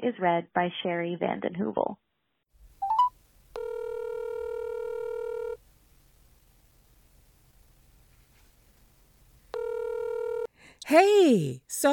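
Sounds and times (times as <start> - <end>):
speech: 0.1 - 2.1, 10.8 - 11.9
touch-tone dialing beeps: 2.8 - 5.6, 9.6 - 10.5.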